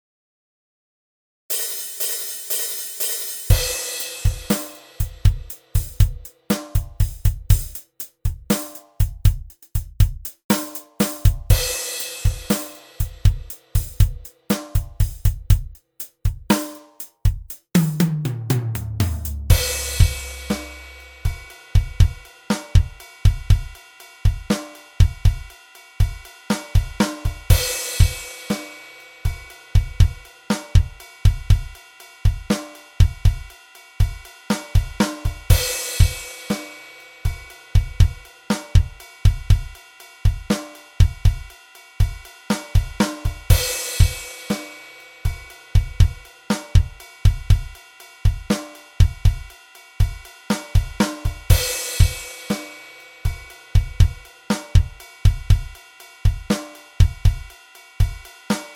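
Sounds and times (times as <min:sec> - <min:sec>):
simple drum rhythm: 0:01.5 - 0:58.7.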